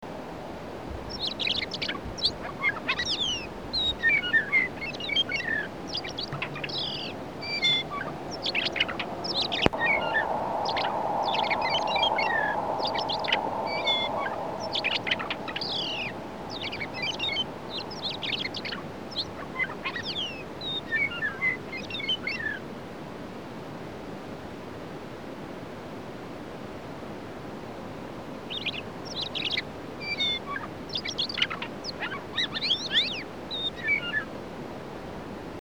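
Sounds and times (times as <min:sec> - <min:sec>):
Western Meadowlark: 0:01.0 - 0:22.6, 0:28.5 - 0:34.3.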